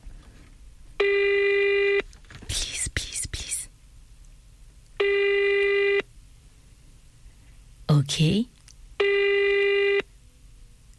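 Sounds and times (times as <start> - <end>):
telephone ringing electronically: 1.0 - 2.0, 5.0 - 6.0, 9.0 - 10.1
speech: 8.1 - 8.6.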